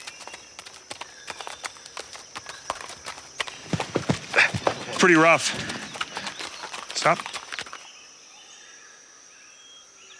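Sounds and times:
horse hooves clip-clopping on a steep muddy mountain trail: 0.0s - 8.0s
speech: 5.0s - 5.8s, 7.0s - 7.3s.

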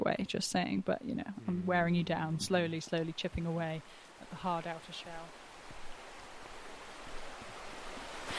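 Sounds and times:
speech: 0.0s - 5.4s
river flowing with a continuous rushing hiss: 2.0s - 8.3s.

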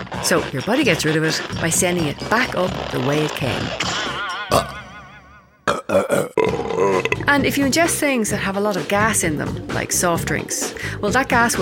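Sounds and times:
burping: 0.0s - 5.0s, 5.6s - 7.4s
speech: 0.2s - 4.8s, 7.3s - 11.6s.

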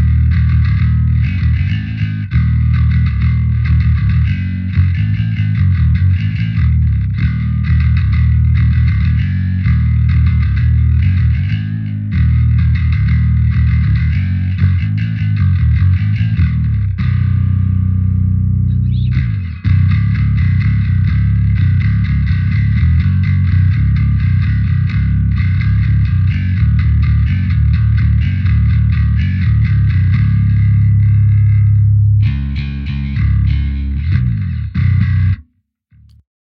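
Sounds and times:
electric bass guitar playing a driven gritty riff: 0.0s - 36.2s.

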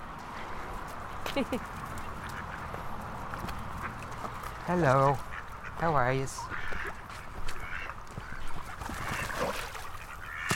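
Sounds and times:
speech: 1.3s - 1.8s, 4.7s - 6.6s
ducks quacking at a pond's edge: 1.4s - 10.5s.

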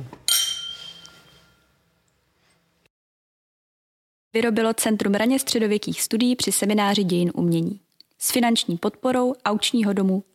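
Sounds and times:
glasses clinking in a toast: 0.3s - 1.7s
speech: 4.4s - 10.3s.

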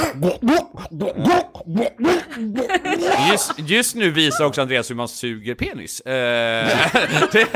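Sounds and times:
person imitating a cat vomiting with gagging heaves and hacking yelps: 0.0s - 3.6s
speech: 0.2s - 7.5s
laughter: 2.1s - 4.6s, 6.5s - 7.5s.

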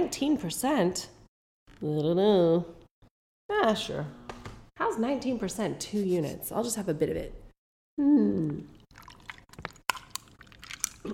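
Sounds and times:
speech: 0.1s - 1.2s, 1.8s - 2.8s, 3.5s - 4.2s, 4.8s - 7.4s, 8.0s - 8.8s
boxed margarita cocktail poured over ice into a glass: 8.8s - 11.1s.

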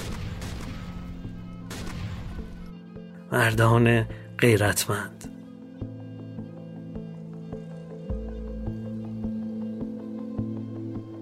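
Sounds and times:
dense gunfire: 0.0s - 2.7s
speech: 3.3s - 5.3s.

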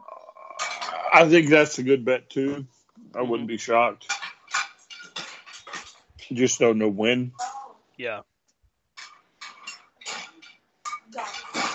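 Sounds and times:
dishes clattering and clinking: 0.5s - 1.4s, 4.0s - 6.1s, 9.0s - 11.7s
speech: 0.9s - 4.1s, 6.3s - 7.4s, 8.0s - 8.3s.

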